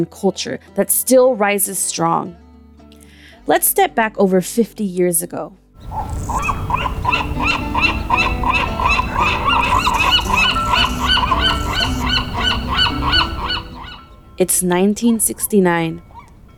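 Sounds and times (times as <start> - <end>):
speech: 0.0 - 2.4, 3.4 - 10.4, 14.4 - 16.1
flock of gulls calling above Alcatraz Island: 5.8 - 16.5.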